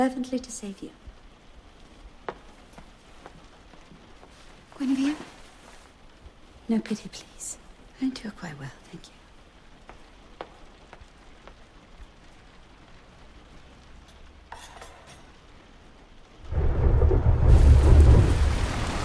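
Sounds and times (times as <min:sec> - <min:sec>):
speech: 0:00.0 - 0:01.0, 0:04.8 - 0:05.4, 0:06.7 - 0:09.2
heavy rain pouring: 0:00.0 - 0:19.0
thunder: 0:16.4 - 0:19.0.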